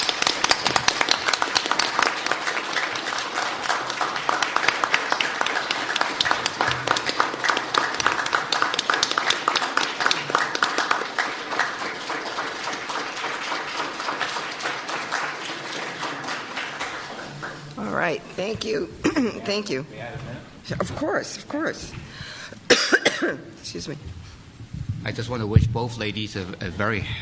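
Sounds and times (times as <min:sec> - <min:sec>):
audience applause: 0:00.0 - 0:18.1
speech: 0:18.6 - 0:22.0, 0:22.8 - 0:24.2, 0:25.0 - 0:27.2.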